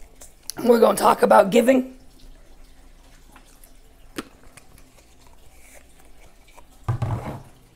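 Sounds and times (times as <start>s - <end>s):
speech: 0.6s - 2.0s
person drinking water: 2.1s - 7.7s.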